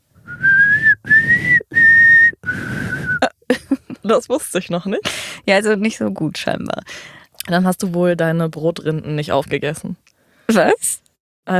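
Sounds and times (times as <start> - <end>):
person whistling a short signal tune: 0.2 - 3.3
laughter: 3.2 - 4.1
speech: 4.1 - 11.5.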